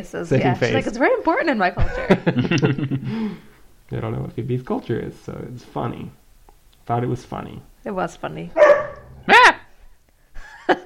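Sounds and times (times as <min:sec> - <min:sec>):
speech: 0:00.0 - 0:06.2, 0:06.9 - 0:09.5
laughter: 0:01.8 - 0:03.4, 0:10.4 - 0:10.8
dog barking at a cat: 0:08.6 - 0:09.7.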